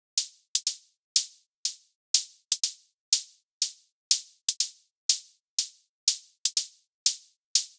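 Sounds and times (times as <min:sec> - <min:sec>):
Afro house hi-hat loop: 0:00.0 - 0:07.7.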